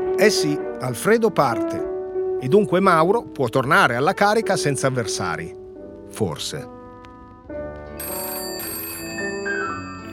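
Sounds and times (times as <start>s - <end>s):
speech: 0.2s - 6.8s
telephone ringing with electronic tone: 7.9s - 10.1s.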